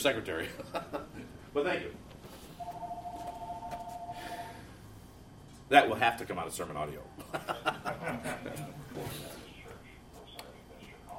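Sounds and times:
speech: 0.0 - 2.2, 5.7 - 9.4
low room hum: 0.0 - 11.1
telephone ringing with electronic two-tone trill: 2.6 - 4.5
laughter: 7.2 - 9.0.

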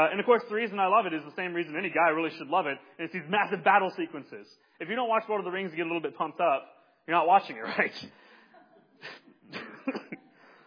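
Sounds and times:
speech: 0.0 - 8.2
person coughing: 9.1 - 10.4.

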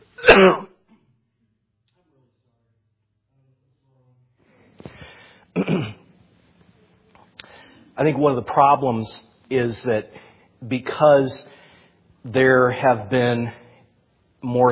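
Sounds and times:
person clearing throat: 0.2 - 0.8, 5.5 - 6.1
person coughing: 0.2 - 0.8, 5.5 - 6.0
speech: 0.3 - 0.6, 8.0 - 11.5, 12.2 - 13.6, 14.4 - 14.7.

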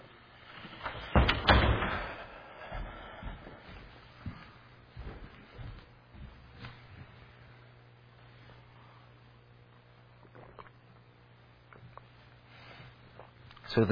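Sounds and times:
door being pushed shut: 0.8 - 2.3.

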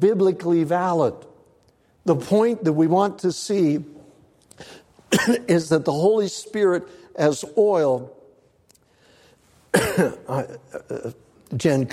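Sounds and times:
speech: 0.0 - 1.3, 2.0 - 4.0, 4.6 - 8.2, 9.8 - 11.9
person coughing from a tickle in the throat: 5.1 - 5.6, 9.7 - 11.0.

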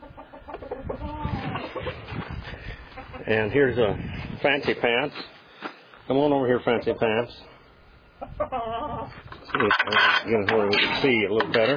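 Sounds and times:
chickens clucking: 0.0 - 3.6, 8.0 - 11.7
speech: 3.3 - 5.4, 6.1 - 7.5, 8.4 - 11.7.

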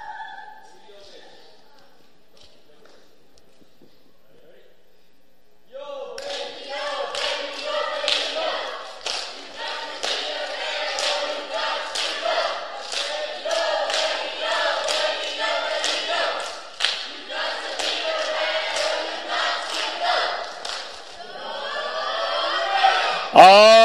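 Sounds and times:
people clapping: 6.2 - 21.4
team cheering loudly: 21.4 - 23.8
people shouting: 21.7 - 23.8.

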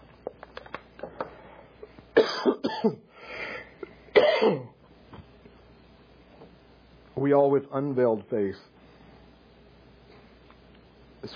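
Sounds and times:
person coughing: 2.2 - 3.1, 4.1 - 4.8
speech: 2.3 - 3.1, 7.2 - 8.7.

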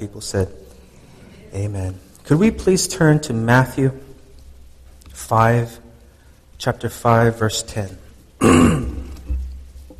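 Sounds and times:
speech: 0.0 - 0.6, 1.5 - 4.0, 5.2 - 5.8, 6.6 - 8.9
person getting over a cold clearing throat: 8.4 - 9.3.

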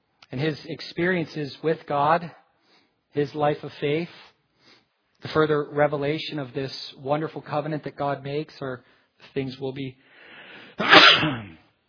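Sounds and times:
speech: 0.3 - 2.4, 3.1 - 4.3, 5.2 - 10.1, 10.8 - 11.6
person sneezing: 10.7 - 11.7.

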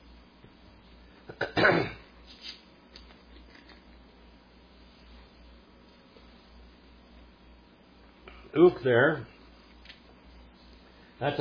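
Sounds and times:
person clearing throat: 1.3 - 2.1
person coughing: 1.3 - 2.1
speech: 1.4 - 2.0, 8.6 - 9.3, 11.2 - 11.3.

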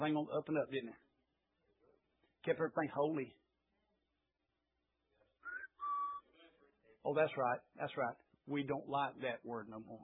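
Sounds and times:
speech: 0.0 - 1.1, 2.4 - 3.4, 7.0 - 10.0
person whistling a two-note birdlike call imitating a pet bird: 5.4 - 6.2.

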